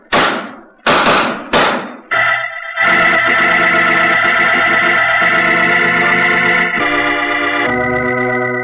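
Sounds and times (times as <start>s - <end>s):
revolver gunshots in an exchange of fire: 0.0s - 5.3s
sustained dramatic musical chord: 2.1s - 8.6s.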